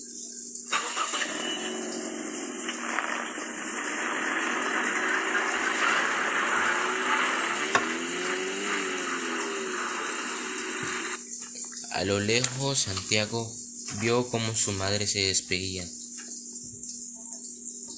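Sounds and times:
car engine starting and idling: 0.7s - 11.2s
speech: 12.0s - 16.0s.

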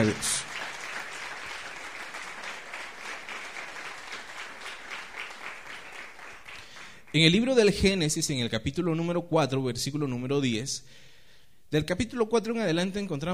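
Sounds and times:
speech: 0.0s - 0.5s, 7.1s - 11.1s, 11.7s - 13.3s
audience applause: 0.0s - 7.2s.

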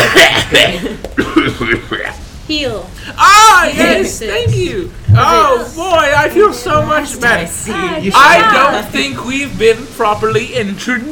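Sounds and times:
rough voiced coughs: 0.0s - 2.2s
speech: 0.5s - 11.1s.

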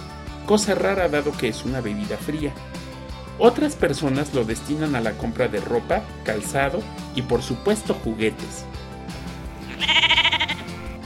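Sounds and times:
speech: 0.5s - 8.8s
sheep bleating: 9.6s - 11.0s.

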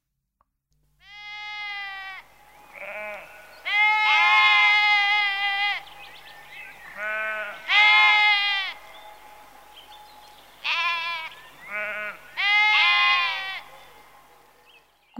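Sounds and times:
sheep bleating on a farm: 1.0s - 6.0s, 6.9s - 8.9s, 10.6s - 13.7s.

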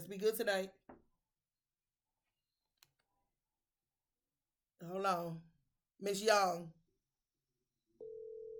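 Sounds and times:
speech: 0.1s - 0.8s, 4.8s - 6.8s
telephone ringing tone of a call waiting to be answered: 8.0s - 8.5s.

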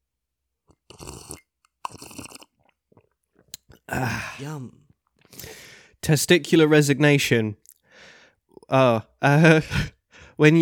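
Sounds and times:
mouth clicks and smacks: 0.7s - 5.5s, 7.6s - 7.9s
slurping sips of a hot drink: 0.7s - 5.6s
speech: 3.9s - 4.8s, 6.1s - 7.6s, 8.7s - 10.6s.

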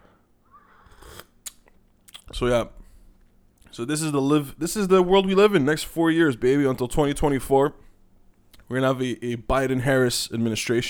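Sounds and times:
person sipping a drink: 0.5s - 2.3s
soft swallowing: 0.5s - 2.3s
speech: 2.4s - 2.8s, 3.8s - 7.8s, 8.7s - 10.8s.

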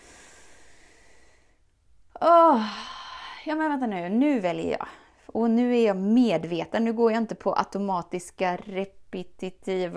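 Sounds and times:
slow deep breath drawn in close to the microphone: 0.0s - 1.7s
speech: 2.2s - 9.9s.

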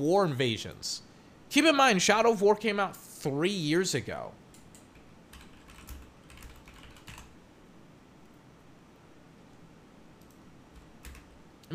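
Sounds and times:
speech: 0.0s - 4.4s
rapid keystrokes on a computer keyboard: 4.6s - 7.3s, 10.2s - 11.4s.

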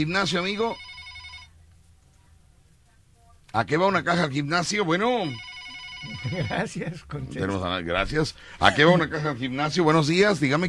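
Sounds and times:
speech: 0.0s - 0.9s, 3.5s - 10.6s
telephone ringing with an incoming call on a call-in line: 0.0s - 1.6s, 5.0s - 6.8s.

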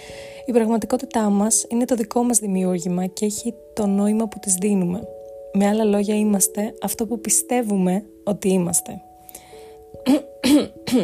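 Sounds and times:
speech: 0.5s - 9.1s, 10.0s - 11.0s
hoarse throaty coughs: 10.0s - 11.0s.

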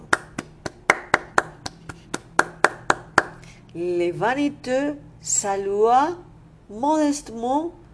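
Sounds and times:
hands clapping: 0.0s - 3.4s
speech: 3.7s - 7.8s.

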